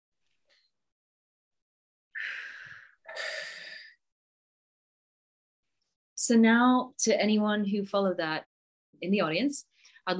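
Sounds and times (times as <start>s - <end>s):
deep breath during an emotional freedom tapping exercise: 2.2s - 4.0s
speech: 6.2s - 10.1s.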